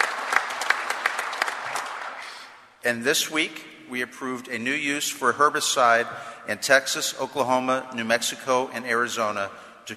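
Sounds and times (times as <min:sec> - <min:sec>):
audience applause after a speech on farm and environmental policy: 0:00.0 - 0:02.4
speech: 0:02.8 - 0:09.9.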